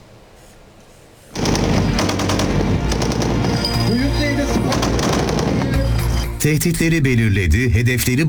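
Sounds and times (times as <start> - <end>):
rapid automatic cannon fire from an air defense system during test firing: 1.4 - 6.3
speech: 6.4 - 8.2.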